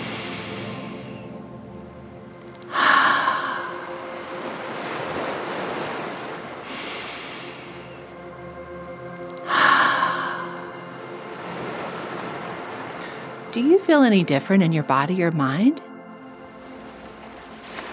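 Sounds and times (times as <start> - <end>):
slow breathy open-mouth exhales: 0.0 - 1.4, 2.7 - 3.9, 6.6 - 7.9, 9.4 - 10.9
speech: 13.5 - 15.8.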